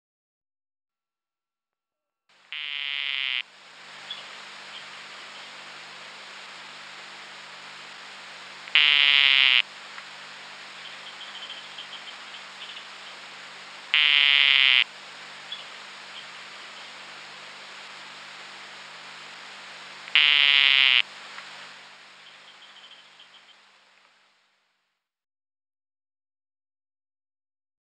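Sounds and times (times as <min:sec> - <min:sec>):
Dendrobates tinctorius calling: 0:02.5 - 0:23.7.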